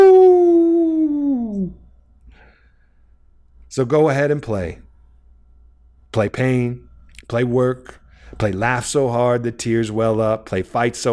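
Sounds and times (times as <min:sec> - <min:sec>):
person howling imitating a wolf: 0:00.0 - 0:01.8
speech: 0:03.7 - 0:04.9, 0:06.1 - 0:11.1.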